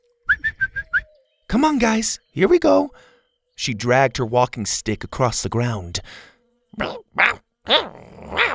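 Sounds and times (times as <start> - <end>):
speech: 1.5 - 8.5
small dinosaurs growling and snarling: 6.8 - 8.5.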